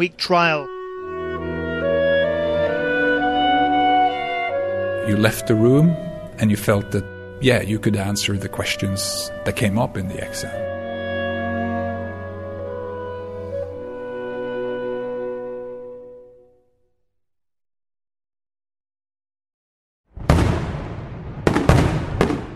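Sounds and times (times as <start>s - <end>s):
speech: 0.0s - 0.8s, 5.0s - 10.7s
sustained musical tones: 0.0s - 16.5s
loud sharp fireworks bursts crackling and booming: 20.2s - 22.5s.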